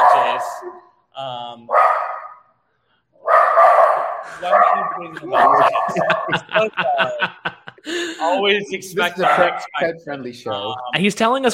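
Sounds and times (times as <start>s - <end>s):
guard dog barking and yelping: 0.0s - 0.9s, 1.7s - 2.4s, 3.2s - 6.4s, 9.1s - 9.8s
speech: 0.4s - 2.0s, 4.3s - 11.5s
laughter: 4.3s - 10.9s.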